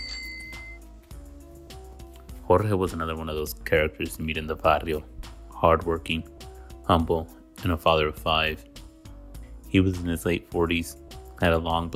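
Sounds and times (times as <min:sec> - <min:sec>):
paletero's hand bell on an ice cream cart ringing: 0:00.0 - 0:00.8
speech: 0:02.5 - 0:08.7, 0:09.7 - 0:11.9.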